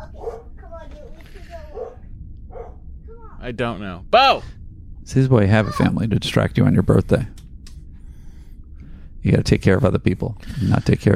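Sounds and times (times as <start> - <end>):
dog barking: 0.0 - 1.1, 1.7 - 2.8
speech: 3.4 - 7.4, 9.2 - 11.1.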